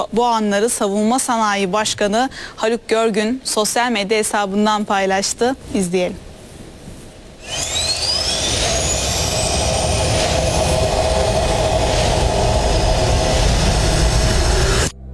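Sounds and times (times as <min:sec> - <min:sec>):
speech: 0:00.0 - 0:06.3
Hürjet trainer jet aircraft roaring in flight: 0:07.4 - 0:14.9.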